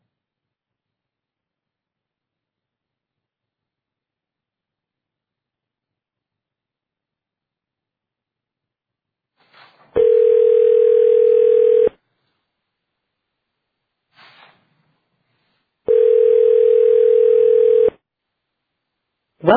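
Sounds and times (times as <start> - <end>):
telephone dial tone while dialing back into a conference call: 10.0 - 12.0, 15.9 - 18.0.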